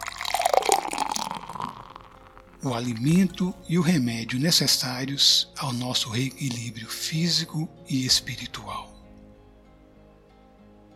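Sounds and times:
water poured into a drinking glass during a prayer: 0.0 - 3.4
speech: 2.6 - 8.9.

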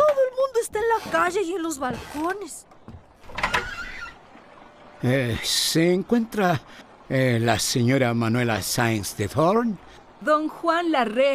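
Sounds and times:
speech: 1.0 - 2.7, 5.0 - 11.3
door opening with mechanical rattle and scrape: 1.9 - 4.2
door squeak: 3.2 - 4.2.

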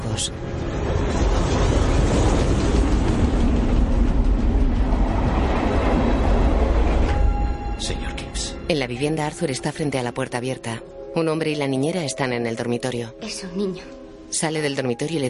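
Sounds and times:
train running through a meadow at night: 0.0 - 10.1
speech: 0.2 - 0.7, 8.7 - 15.2.

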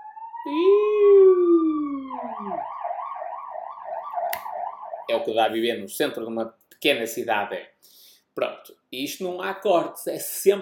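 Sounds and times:
ambulance siren passing: 0.0 - 5.3
speech: 0.4 - 0.8, 2.4 - 2.8, 5.1 - 10.5.

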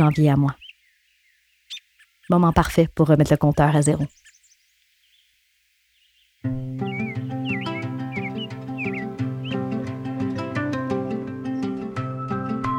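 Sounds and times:
speech: 0.0 - 0.6, 2.3 - 4.2
birds chirping and trilling in spring: 0.0 - 12.5
sustained music with rhythmic plucked notes: 6.5 - 12.7.

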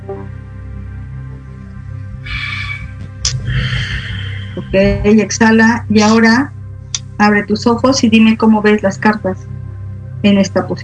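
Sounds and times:
steady sustained musical tone: 0.0 - 9.8
deep breath in during a guided breathing moment: 2.3 - 4.6
speech: 4.6 - 6.6, 7.2 - 9.5, 10.2 - 10.8.

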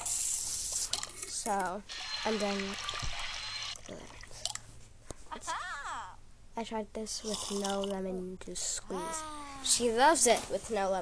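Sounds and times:
speech: 1.4 - 3.1, 6.6 - 11.0
water pouring into a container: 1.9 - 4.4.

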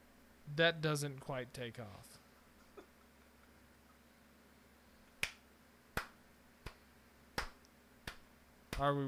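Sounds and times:
speech: 0.5 - 2.2, 8.8 - 9.0
slow sarcastic hand clapping: 5.2 - 6.8, 7.4 - 8.9.

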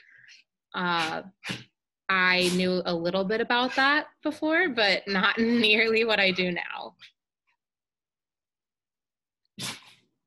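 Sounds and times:
speech: 0.8 - 7.2
dog sneezing: 9.6 - 10.0.

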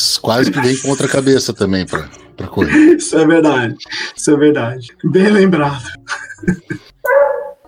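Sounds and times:
speech: 0.2 - 7.3
laughter: 0.4 - 1.5, 2.4 - 4.2, 5.8 - 6.9
dog barking: 7.0 - 7.6
higher-pitched yelping dog bark: 7.0 - 7.6.

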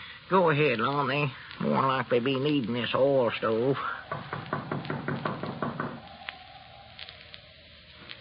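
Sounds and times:
speech: 0.3 - 4.3
knocking on a wooden door: 4.1 - 6.0.

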